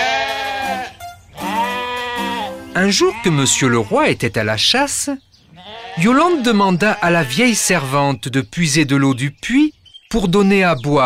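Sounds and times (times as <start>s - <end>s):
sheep bleating while grazing on grass around a well: 0.0s - 4.3s, 5.5s - 8.2s
speech: 2.8s - 5.3s, 6.0s - 11.0s.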